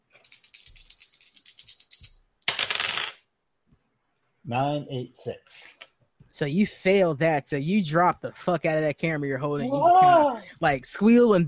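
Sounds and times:
dice rattling briskly in a cup: 0:00.1 - 0:03.2
speech: 0:04.5 - 0:05.7, 0:06.3 - 0:11.4.

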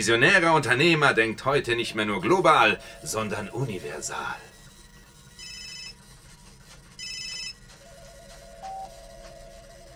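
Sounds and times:
speech: 0:00.0 - 0:04.5
telephone ringing with an incoming call: 0:04.5 - 0:06.1, 0:07.0 - 0:09.9.

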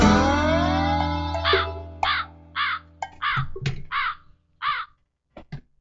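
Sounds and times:
wavering tonal drone: 0:00.1 - 0:01.6
crow cawing: 0:01.3 - 0:04.9.

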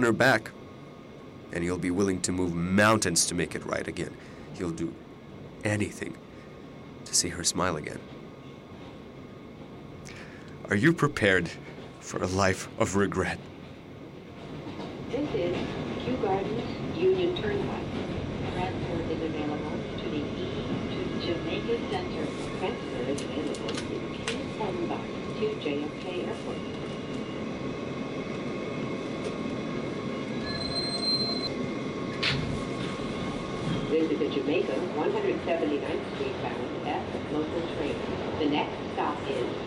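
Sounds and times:
speech: 0:00.0 - 0:00.6, 0:01.5 - 0:05.0, 0:05.6 - 0:06.2, 0:07.1 - 0:08.1, 0:10.7 - 0:13.5, 0:21.7 - 0:27.0, 0:34.2 - 0:39.6
subway train rumbling along the tracks: 0:00.0 - 0:39.6
metallic subway train wheel squeals: 0:30.4 - 0:31.5.

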